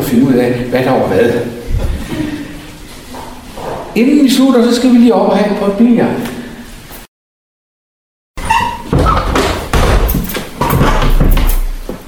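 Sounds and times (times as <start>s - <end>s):
speech: 0.1s - 1.6s, 4.0s - 6.4s
door pulled shut with heavy thuds, creaks and rattles: 8.4s - 12.0s.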